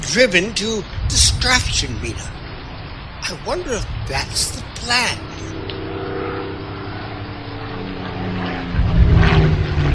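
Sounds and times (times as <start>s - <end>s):
World War II Japanese fighter plane propeller engine droning: 0.0s - 9.9s
speech: 0.1s - 2.4s, 3.2s - 5.6s.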